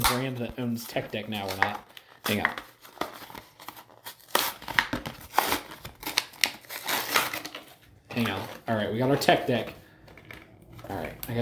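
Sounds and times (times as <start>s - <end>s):
toy's plastic packaging ripped open: 0.0s - 8.4s
speech: 0.2s - 2.7s, 8.2s - 9.8s, 10.9s - 11.3s.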